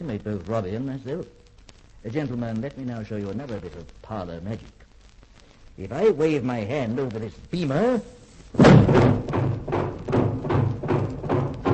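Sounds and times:
speech: 0:00.0 - 0:04.8, 0:05.8 - 0:09.3
heavy slam: 0:08.5 - 0:11.7
loud metallic thuds: 0:08.6 - 0:11.7.

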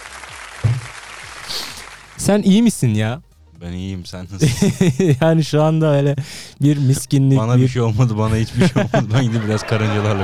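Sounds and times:
canned applause sound effect from button: 0:00.0 - 0:02.1, 0:09.2 - 0:10.2
speech: 0:02.2 - 0:10.2
laughter: 0:04.2 - 0:10.2.

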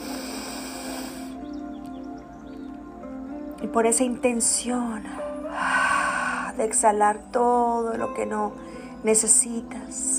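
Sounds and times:
person inhaling deeply during a guided breathing meditation: 0:00.0 - 0:01.4, 0:05.5 - 0:06.6
speech: 0:03.6 - 0:05.7, 0:06.6 - 0:10.1.

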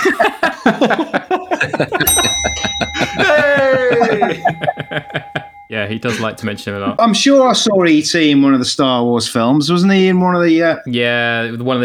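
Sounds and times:
speech: 0:00.0 - 0:01.1, 0:01.8 - 0:02.1, 0:04.3 - 0:11.8
people talking and chuckling: 0:00.0 - 0:07.0
bell ding sound effect: 0:02.0 - 0:07.8.

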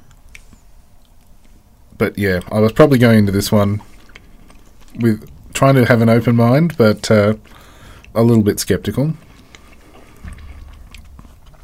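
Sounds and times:
biting and chewing a chewy sun-dried tomato and parmesan snack: 0:00.0 - 0:01.7, 0:02.4 - 0:08.2, 0:09.0 - 0:11.6
speech: 0:02.0 - 0:03.9, 0:05.0 - 0:07.6, 0:08.2 - 0:09.2.

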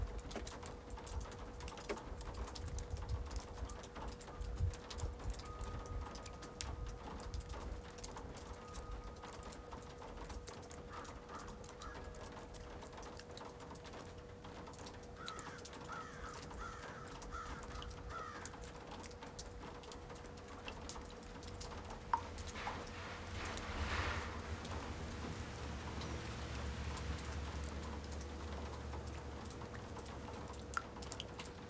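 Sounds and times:
dripping water: 0:00.0 - 0:31.6
crow cawing: 0:10.9 - 0:12.2, 0:15.2 - 0:18.6.

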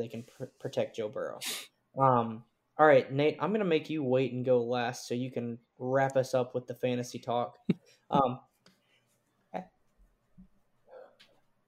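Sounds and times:
speech: 0:00.0 - 0:08.5, 0:09.5 - 0:09.7
person sneezing: 0:01.4 - 0:01.7.

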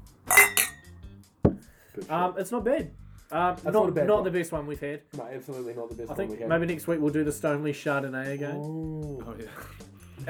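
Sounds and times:
wine glasses clinking in a toast: 0:00.3 - 0:00.9
speech: 0:02.0 - 0:10.2.

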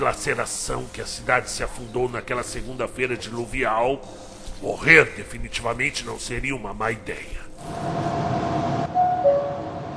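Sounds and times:
speech: 0:00.0 - 0:08.1
subway train rumbling: 0:07.6 - 0:09.9
tonal hum: 0:07.6 - 0:09.9.

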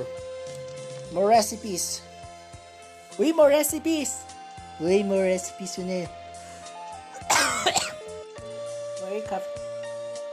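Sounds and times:
speech: 0:01.1 - 0:02.1, 0:03.2 - 0:06.2, 0:09.3 - 0:09.6
person coughing: 0:07.2 - 0:08.0.

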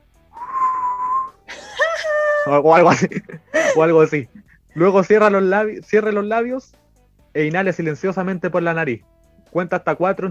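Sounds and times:
breathy whistling exhale through slightly parted lips during a breathing exercise: 0:00.3 - 0:01.4
laughter: 0:01.5 - 0:04.0
speech: 0:02.4 - 0:06.8, 0:07.4 - 0:10.3.

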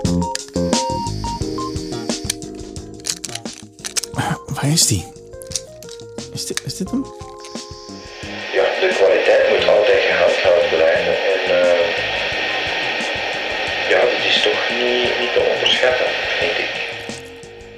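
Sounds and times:
tape hiss on an old cassette recording: 0:00.0 - 0:17.7
voices talking: 0:01.9 - 0:02.3, 0:03.2 - 0:05.1, 0:06.3 - 0:17.2.

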